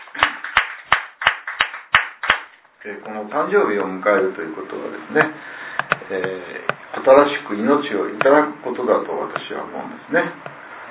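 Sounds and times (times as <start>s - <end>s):
applause from a birthday gathering: 0.0s - 2.6s
speech: 2.8s - 10.5s.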